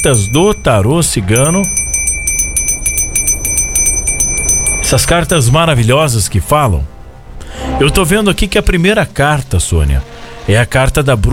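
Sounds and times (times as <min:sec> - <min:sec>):
speech: 0:00.0 - 0:01.9, 0:04.9 - 0:06.9, 0:07.5 - 0:11.3
small handbell rung during a gypsy tarot card reading: 0:00.0 - 0:05.5.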